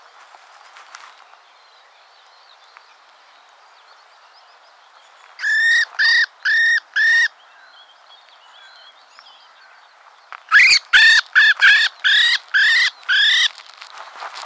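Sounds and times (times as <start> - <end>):
Common blackbird calling with rasping harmonic notes: 5.4 - 7.9, 10.5 - 13.5.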